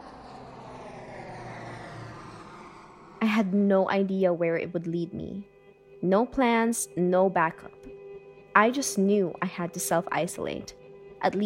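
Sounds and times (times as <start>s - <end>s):
airplane engine droning: 0.0s - 6.0s
speech: 3.3s - 7.9s, 8.6s - 11.4s.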